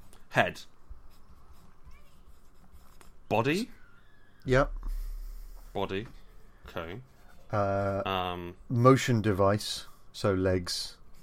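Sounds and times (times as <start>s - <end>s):
speech: 0.4s - 0.7s, 3.3s - 3.8s, 4.4s - 4.8s, 5.8s - 11.0s
pencil scratching across paper: 1.0s - 3.2s.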